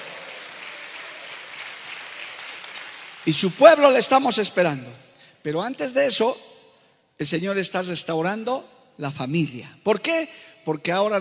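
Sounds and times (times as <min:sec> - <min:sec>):
audience applauding: 0:00.0 - 0:03.6
speech: 0:03.3 - 0:06.5, 0:07.2 - 0:11.1.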